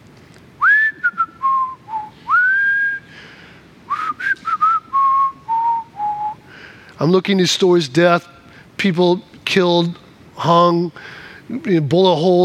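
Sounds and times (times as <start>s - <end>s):
person whistling a short melodic tune: 0.6s - 3.1s, 3.9s - 6.4s
speech: 7.0s - 12.4s.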